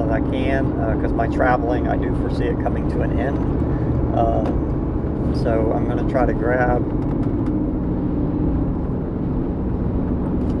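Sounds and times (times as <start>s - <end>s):
semi truck engine and road noise passing on a highway: 0.0s - 10.5s
speech: 0.1s - 7.2s.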